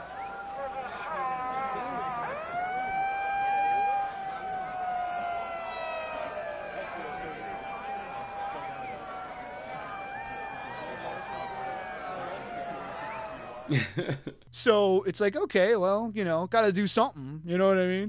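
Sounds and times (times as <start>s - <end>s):
megaphone siren wailing: 0.4s - 13.6s
laughter: 13.6s - 14.4s
speech: 13.7s - 18.0s.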